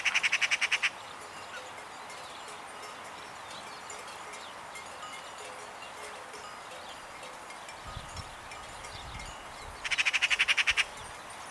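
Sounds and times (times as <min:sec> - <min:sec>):
Eurasian magpie giving a harsh rattling chatter: 0:00.0 - 0:00.9, 0:09.8 - 0:11.0.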